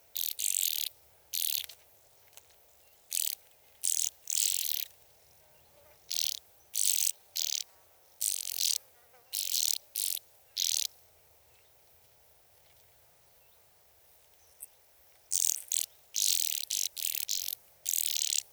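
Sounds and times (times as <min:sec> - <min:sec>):
band-winged grasshopper stridulation at Sissonne: 0:00.2 - 0:01.7, 0:03.1 - 0:04.9, 0:06.1 - 0:08.8, 0:09.4 - 0:10.9, 0:15.3 - 0:18.5.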